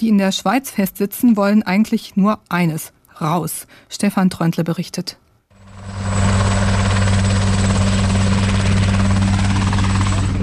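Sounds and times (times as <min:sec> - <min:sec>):
speech: 0:00.0 - 0:05.2
helicopter engine and rotor roaring: 0:05.6 - 0:10.4.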